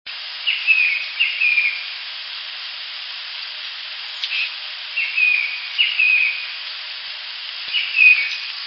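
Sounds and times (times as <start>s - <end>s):
tufted titmouse singing: 0.5s - 1.8s, 4.1s - 6.5s, 7.6s - 8.5s.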